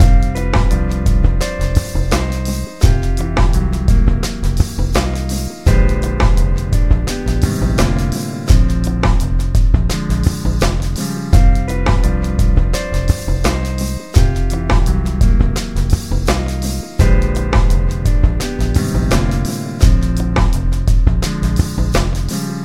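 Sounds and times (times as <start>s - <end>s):
jazz loops: 0.0s - 22.6s.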